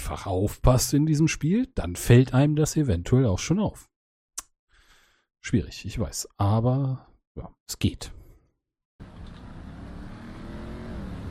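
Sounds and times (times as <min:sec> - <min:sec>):
speech: 0:00.1 - 0:03.9, 0:05.4 - 0:08.2
video game car engine reversing: 0:09.0 - 0:11.3.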